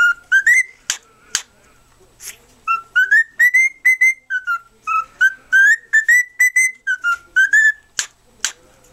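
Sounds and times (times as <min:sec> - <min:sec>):
cockatiel whistled song: 0:00.0 - 0:01.0, 0:02.7 - 0:08.1.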